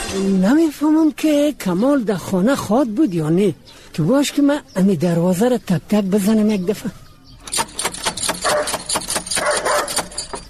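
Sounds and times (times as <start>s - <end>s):
speech: 0.2s - 7.0s
dangerous dog barking loudly at a house: 8.4s - 10.4s.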